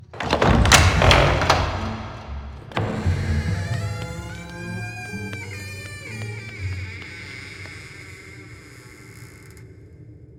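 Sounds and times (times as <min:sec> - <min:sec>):
creaky door opening: 0:00.0 - 0:09.9.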